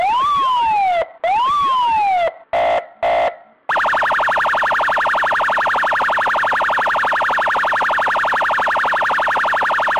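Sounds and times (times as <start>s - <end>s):
police siren: 0.0s - 9.9s.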